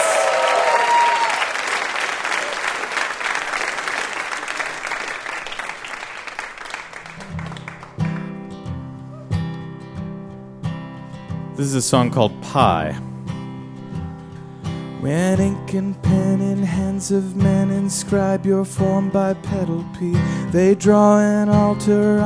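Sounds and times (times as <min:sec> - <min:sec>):
audience clapping loudly: 0:00.0 - 0:08.4
speech: 0:11.6 - 0:13.1, 0:15.0 - 0:22.2.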